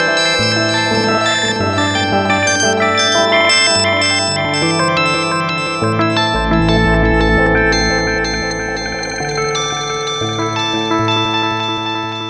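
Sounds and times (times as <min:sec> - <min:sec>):
stutter effect: 0:00.1 - 0:12.1.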